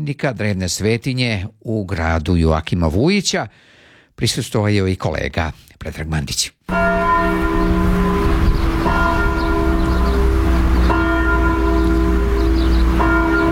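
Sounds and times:
speech: 0:00.0 - 0:07.8
Serbian Orthodox church bell ringing to call worshippers to the feast: 0:06.7 - 0:13.4.

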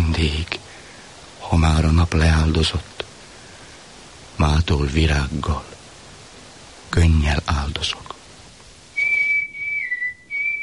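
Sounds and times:
speech: 0:00.2 - 0:00.5, 0:01.5 - 0:03.0, 0:04.4 - 0:05.7, 0:06.9 - 0:08.2
person whistling sustained high notes as a warning signal: 0:09.0 - 0:10.6.

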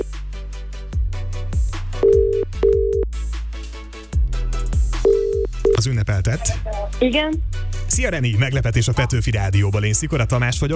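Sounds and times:
busy music with strong bass: 0:00.0 - 0:10.7
telephone ringback beeps: 0:02.0 - 0:03.0, 0:05.1 - 0:05.8
speech: 0:05.8 - 0:10.7.

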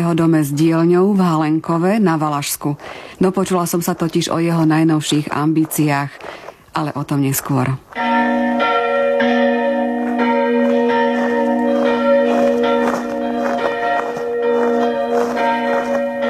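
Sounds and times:
speech: 0:00.0 - 0:09.5
church bells ringing festively: 0:07.9 - 0:16.2.

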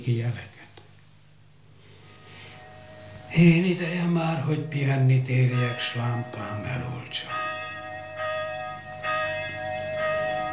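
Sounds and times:
speech: 0:00.0 - 0:00.7, 0:03.3 - 0:07.4
church bell tolling for dawn mass: 0:02.2 - 0:10.5.

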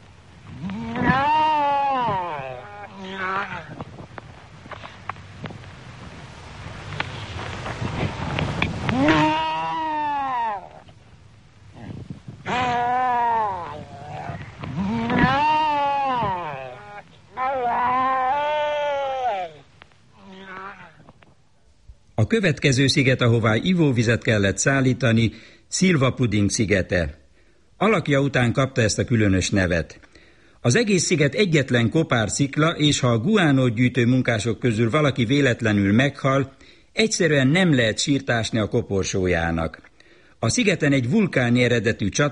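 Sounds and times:
rough noisy din of other animals: 0:00.5 - 0:03.8, 0:08.9 - 0:10.9, 0:11.8 - 0:21.2
seals barking at a seal colony: 0:08.9 - 0:10.9, 0:12.5 - 0:19.6
speech: 0:22.3 - 0:27.2, 0:27.8 - 0:30.0, 0:30.6 - 0:42.2.

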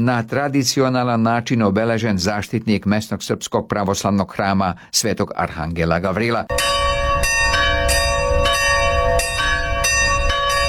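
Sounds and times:
speech: 0:00.0 - 0:07.3
Serbian Orthodox church bells ringing for a Sunday feast-day liturgy in Kalász: 0:06.5 - 0:10.6.

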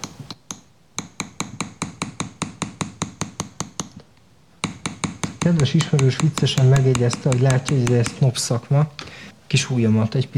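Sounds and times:
hammer tapping metal to smooth an acanthus-leaf ornament: 0:00.0 - 0:04.0, 0:04.6 - 0:08.3
speech: 0:05.5 - 0:10.3.

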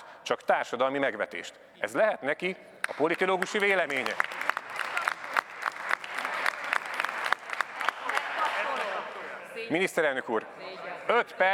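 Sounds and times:
speech: 0:00.3 - 0:04.4, 0:09.7 - 0:11.5
large group applauding in a parliament chamber: 0:02.8 - 0:09.4.

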